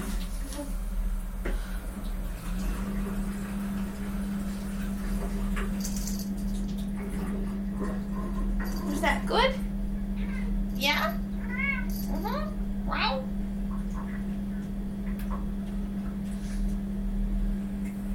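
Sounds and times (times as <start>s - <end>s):
steady low electrical hum: 0.0s - 18.1s
cat meowing: 10.2s - 10.5s, 11.4s - 11.9s.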